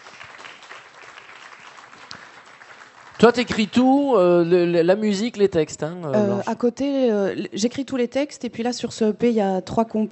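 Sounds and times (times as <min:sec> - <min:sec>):
applause after a song: 0:00.0 - 0:04.0
speech: 0:03.2 - 0:10.0.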